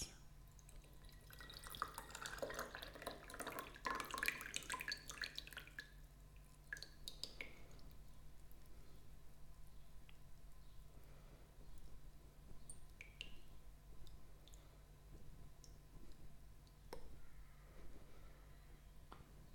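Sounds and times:
low steady hum: 0.0s - 19.5s
tea dripping from a teapot: 0.4s - 17.2s
tea pouring from a teapot: 0.5s - 8.0s.

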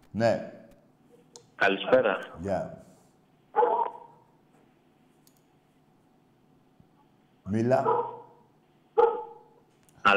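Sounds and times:
speech: 0.2s - 0.6s, 1.6s - 2.9s, 7.5s - 8.2s
dog barking: 3.6s - 4.2s, 7.8s - 9.6s.

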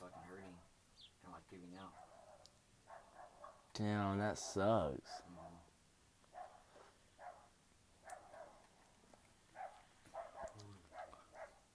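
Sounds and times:
dogs barking: 0.0s - 0.6s, 1.8s - 3.7s, 5.0s - 5.7s, 6.3s - 8.7s, 9.5s - 11.7s
speech: 1.2s - 2.1s, 3.8s - 5.7s.

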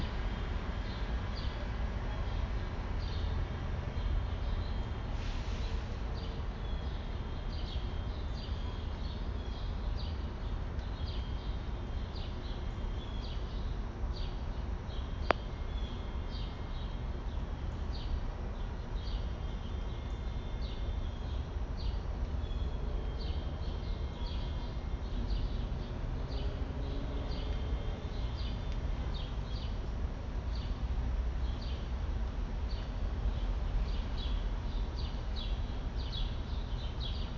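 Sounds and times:
city traffic rumble outside a subway station: 0.0s - 20.2s, 20.9s - 37.3s.

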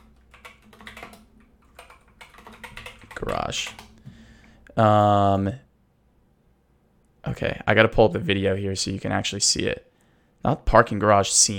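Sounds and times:
typing on a computer keyboard: 0.0s - 4.0s
speech: 3.2s - 3.8s, 4.8s - 5.6s, 7.3s - 11.5s.

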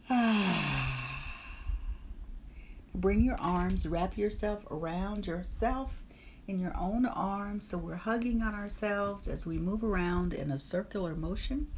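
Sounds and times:
deep breath out during a guided breathing exercise: 0.0s - 2.8s
speech: 3.0s - 11.7s.

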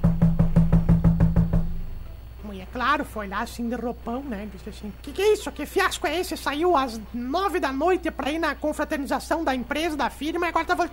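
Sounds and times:
firm knocks on a door: 0.0s - 1.9s
speech: 2.8s - 10.9s.

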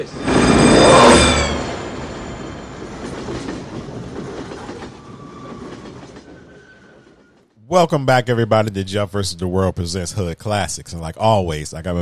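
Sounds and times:
speech: 0.0s - 0.6s, 7.7s - 12.0s
high metallic whine: 0.0s - 3.4s
train clattering along rails: 0.0s - 7.6s.

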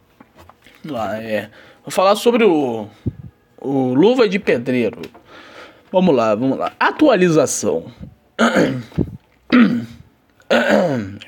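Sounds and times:
speech: 0.8s - 9.8s, 10.5s - 11.2s
person clearing throat: 8.4s - 11.2s.

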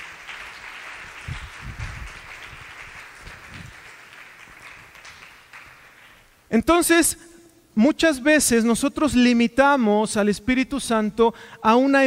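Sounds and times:
audience applause: 0.0s - 6.2s
speech: 6.5s - 12.0s.

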